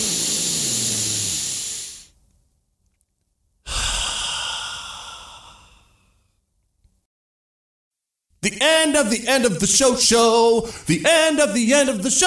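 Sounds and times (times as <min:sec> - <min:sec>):
deep breath: 0:00.0 - 0:02.2, 0:03.6 - 0:06.4, 0:10.6 - 0:10.9
speech: 0:08.4 - 0:12.2.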